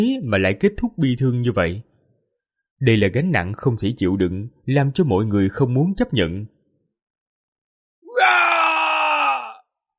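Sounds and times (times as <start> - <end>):
speech: 0.0 - 1.9, 2.8 - 6.6
anguished roar of a blood-soaked staggering warrior: 8.1 - 9.6.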